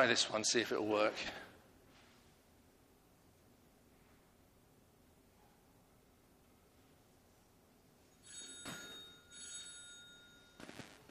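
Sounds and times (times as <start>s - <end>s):
speech: 0.0s - 1.4s
telephone ringing through a handset: 8.2s - 11.0s.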